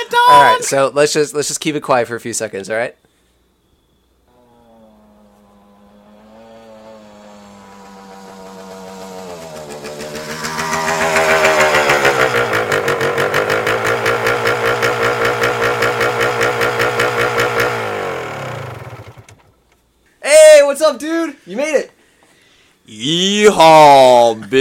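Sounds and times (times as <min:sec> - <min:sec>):
speech: 0:00.3 - 0:03.1, 0:21.4 - 0:21.9, 0:22.9 - 0:24.5
motorcycle engine approaching and idling: 0:05.9 - 0:19.5.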